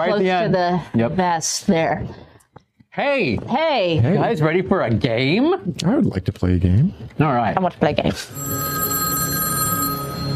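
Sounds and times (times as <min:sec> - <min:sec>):
speech: 0:00.0 - 0:02.3, 0:03.0 - 0:08.8
telephone bell ringing with a bright metallic tone: 0:08.3 - 0:10.3.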